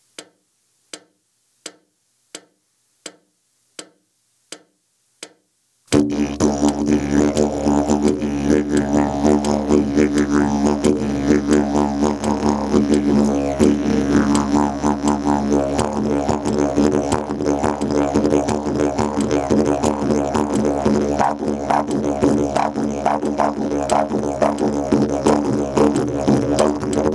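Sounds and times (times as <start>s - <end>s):
didgeridoo solo: 5.9s - 27.1s.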